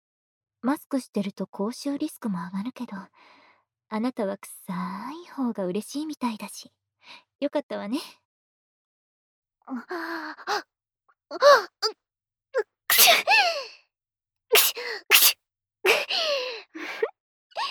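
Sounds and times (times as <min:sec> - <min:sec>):
speech: 0:00.6 - 0:08.2, 0:09.6 - 0:10.7, 0:11.3 - 0:13.8, 0:14.5 - 0:17.6
person sneezing: 0:12.9 - 0:13.2, 0:14.6 - 0:15.4
quick voiced gasping inhale: 0:12.9 - 0:13.2, 0:14.6 - 0:15.4.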